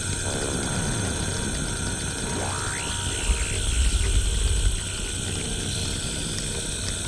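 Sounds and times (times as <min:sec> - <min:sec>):
dense rumbling low bed of natural soundscape: 0:00.2 - 0:06.9
steady high sustained synthesizer tones: 0:00.3 - 0:05.5.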